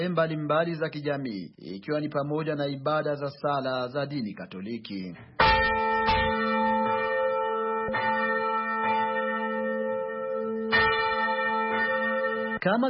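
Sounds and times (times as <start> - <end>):
speech: 0.0 - 6.2, 12.6 - 12.8
Catholic church bell ringing to call worshippers to Sunday prayer: 5.4 - 12.8.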